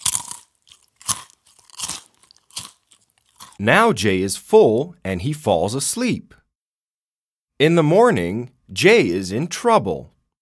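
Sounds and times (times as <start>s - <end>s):
cookies being munched with crunching bites: 0.0s - 3.6s
speech: 3.6s - 6.4s, 7.6s - 10.2s.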